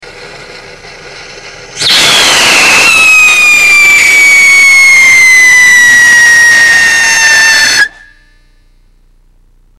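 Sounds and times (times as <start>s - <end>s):
whistle firework test with iron oxide and sodium salicylate core burner: 1.7s - 8.4s.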